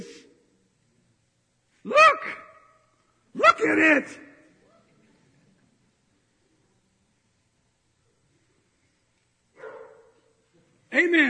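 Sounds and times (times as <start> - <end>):
low steady noise: 0.0 - 11.2
speech: 3.6 - 4.3
dog barking during a church sermon: 9.6 - 10.3.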